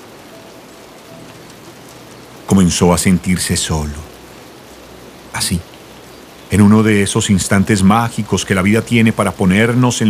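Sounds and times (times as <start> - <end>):
torrential rain downpour: 0.0 - 10.0
speech: 2.5 - 4.2, 5.4 - 5.7, 6.5 - 10.0.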